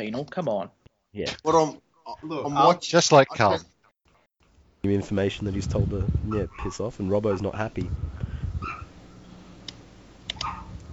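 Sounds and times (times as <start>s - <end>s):
speech: 0.0s - 3.8s, 4.8s - 8.2s
low rumbling background: 5.1s - 10.9s
dog barking: 6.2s - 7.7s, 8.6s - 9.2s, 10.3s - 10.8s
sharp clicks: 9.6s - 10.6s.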